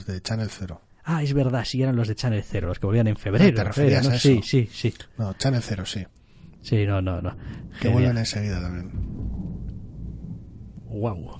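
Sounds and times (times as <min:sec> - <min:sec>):
person's voice: 0:00.0 - 0:06.1, 0:06.7 - 0:08.9
speech: 0:00.0 - 0:09.2, 0:10.9 - 0:11.3
low rumble of thunder during a storm: 0:06.3 - 0:11.3.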